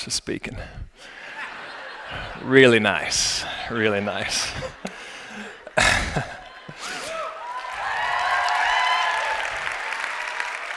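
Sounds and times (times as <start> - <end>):
speech: 0.0 - 1.2, 2.1 - 6.9
laughter: 1.0 - 7.8
large audience applauding: 4.9 - 10.7.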